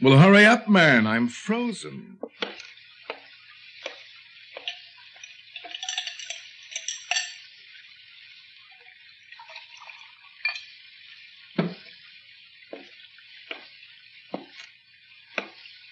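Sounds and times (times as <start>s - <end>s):
speech: 0.0s - 2.6s
cocktail liquid pouring: 1.5s - 15.9s
glass and ice clinking and knocking: 4.6s - 7.5s, 9.4s - 10.8s.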